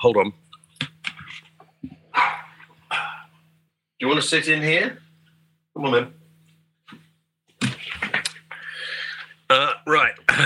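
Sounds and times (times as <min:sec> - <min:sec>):
speech: 0:00.0 - 0:00.9, 0:04.0 - 0:05.0, 0:05.8 - 0:06.2, 0:09.5 - 0:10.4
dog yelping and barking: 0:02.1 - 0:02.6.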